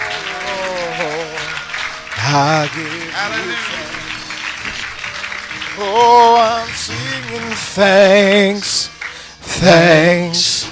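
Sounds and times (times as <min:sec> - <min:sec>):
sustained musical tones: 0:00.0 - 0:10.4
audience clapping hands: 0:00.0 - 0:10.6
speech: 0:02.3 - 0:04.0, 0:05.8 - 0:10.6.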